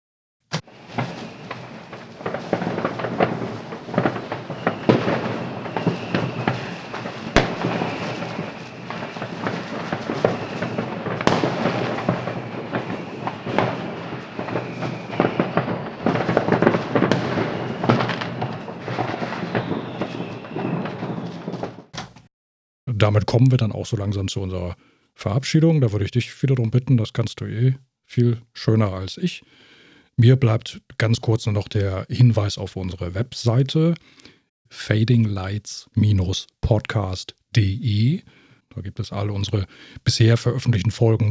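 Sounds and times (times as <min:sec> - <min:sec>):
New Year's fireworks crackling and popping through an open window: 0:00.5 - 0:22.0
speech: 0:23.1 - 0:41.3.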